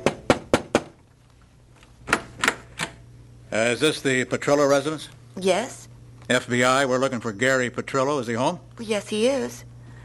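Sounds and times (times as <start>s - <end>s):
firm knocking on a door: 0.0s - 1.0s
speech: 3.5s - 9.7s.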